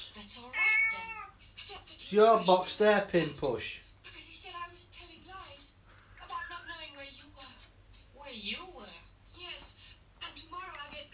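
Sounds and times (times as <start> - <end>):
cat in a box meowing: 0.5 - 1.4
speech: 2.1 - 3.8.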